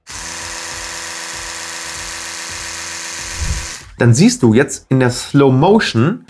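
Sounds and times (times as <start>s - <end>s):
rotating-oscillating electric toothbrush buzzing: 0.0s - 3.9s
speech: 4.0s - 6.2s.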